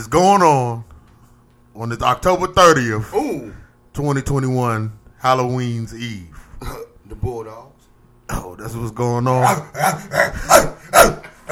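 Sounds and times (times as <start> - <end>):
speech: 0.0 - 0.9, 1.8 - 7.7, 8.3 - 11.5
dog barking: 9.4 - 11.5.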